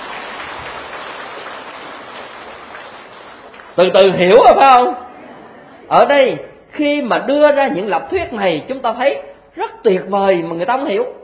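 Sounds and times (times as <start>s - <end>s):
audience crowd clapping: 0.0s - 4.2s
speech: 3.8s - 5.0s, 5.9s - 11.2s.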